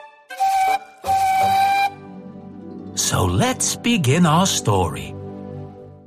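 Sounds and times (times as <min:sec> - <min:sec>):
steam engine whistle: 0:00.0 - 0:02.1
speech: 0:03.0 - 0:05.2.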